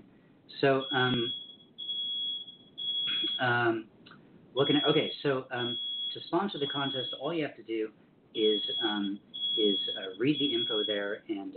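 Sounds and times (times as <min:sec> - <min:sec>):
speech: 0:00.6 - 0:01.4, 0:03.4 - 0:03.9, 0:04.6 - 0:11.5
shrill high-pitched alarm tone: 0:00.7 - 0:03.5, 0:04.6 - 0:07.4, 0:08.4 - 0:11.2.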